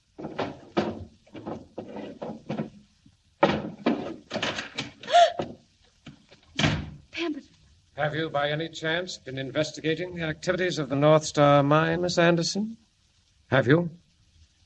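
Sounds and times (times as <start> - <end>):
office desk drawers opening and shutting: 0.2 - 5.0, 6.5 - 7.0
speech: 8.0 - 12.8, 13.5 - 14.0.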